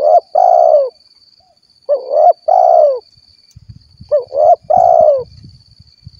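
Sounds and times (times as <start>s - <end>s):
spotted dove cooing: 0.0s - 1.0s, 1.9s - 3.1s, 4.1s - 5.3s.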